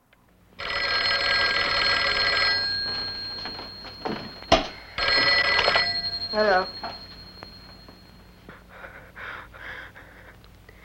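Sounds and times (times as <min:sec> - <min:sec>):
telephone bell ringing: 0:00.6 - 0:08.5
speech: 0:06.4 - 0:06.8.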